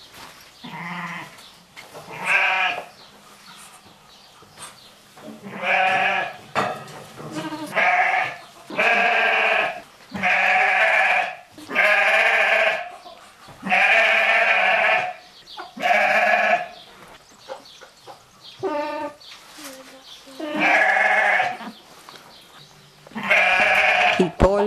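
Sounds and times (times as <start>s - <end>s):
goat bleating: 2.1s - 2.9s, 5.4s - 6.4s, 7.3s - 12.9s, 13.6s - 15.2s, 15.8s - 16.7s, 20.4s - 21.8s, 23.1s - 24.5s.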